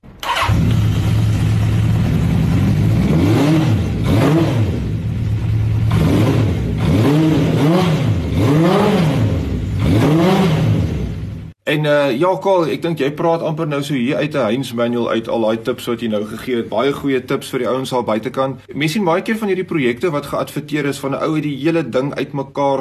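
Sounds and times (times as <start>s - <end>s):
Honda CB650 motorcycle engine idling and revving: 0.2s - 11.6s
speech: 11.8s - 22.7s.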